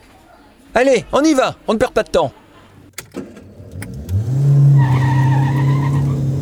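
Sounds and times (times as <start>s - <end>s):
speech: 0.8s - 2.4s
car engine roaring as the car pulls away: 2.6s - 6.3s
sharp clicks: 2.8s - 4.3s
car tire squeal while pulling away: 4.0s - 6.3s.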